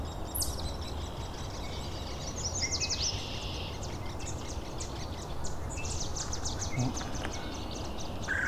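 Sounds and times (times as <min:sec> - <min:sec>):
yellow warblers chipping and trilling: 0:00.2 - 0:08.4.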